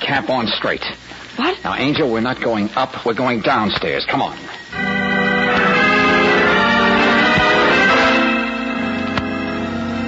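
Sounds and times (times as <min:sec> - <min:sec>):
speech: 0:00.1 - 0:04.6
bell ringing with a dense sustained metallic tone: 0:04.7 - 0:10.0.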